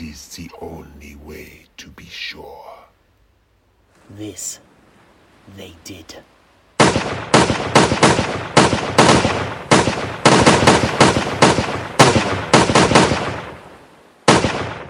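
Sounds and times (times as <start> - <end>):
speech: 0.2 - 2.8, 4.1 - 4.7, 5.5 - 6.3, 7.0 - 10.3
volley of gunfire from a fusillade: 6.8 - 14.8.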